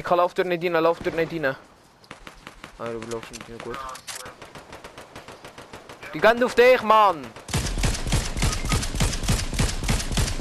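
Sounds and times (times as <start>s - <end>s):
speech: 0.0s - 1.7s, 2.8s - 4.4s, 6.1s - 7.4s
rapid automatic video game gunfire: 2.1s - 10.4s.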